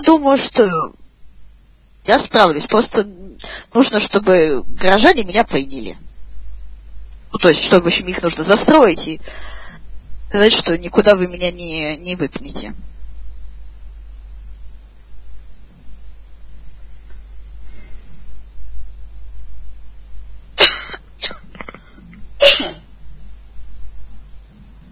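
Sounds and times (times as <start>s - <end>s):
speech: 0.0s - 1.0s, 2.0s - 6.0s, 7.3s - 9.6s, 10.3s - 12.9s
quiet low hum: 0.2s - 24.9s
harsh explosive coughs: 20.6s - 22.9s.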